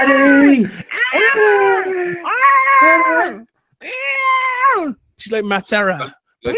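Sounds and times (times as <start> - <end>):
voice imitating a woman screaming at ringside: 0.0 - 5.0
speech: 0.6 - 1.5, 5.3 - 6.5.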